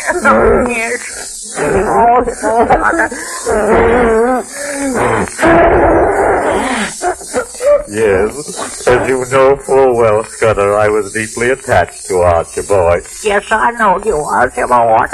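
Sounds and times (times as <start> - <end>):
laughter: 0.0 - 13.0
speech: 0.1 - 15.1
person sobbing and wailing: 1.6 - 9.3
hissy breathy gasping: 3.1 - 7.9.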